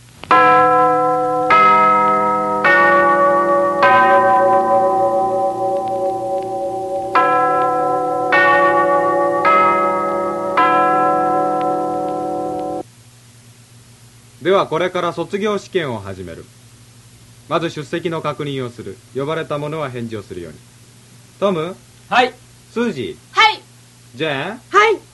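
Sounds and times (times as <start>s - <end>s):
school bell chime ringing for exam start: 0.3s - 12.8s
speech: 14.5s - 16.6s, 17.5s - 20.7s, 21.4s - 23.3s, 24.1s - 25.0s.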